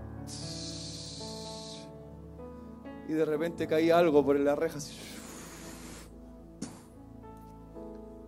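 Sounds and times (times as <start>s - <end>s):
faint steady tonal background: 0.0s - 8.2s
voice imitating hiss of air escaping a punctured ball: 0.3s - 2.0s, 4.9s - 6.9s
speech: 3.1s - 5.2s.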